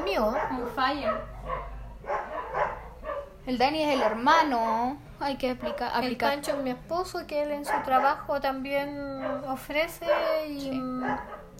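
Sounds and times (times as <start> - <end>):
dogs barking: 0.0 - 4.5, 5.4 - 6.8, 7.5 - 11.5
speech: 0.2 - 1.8, 3.4 - 11.3.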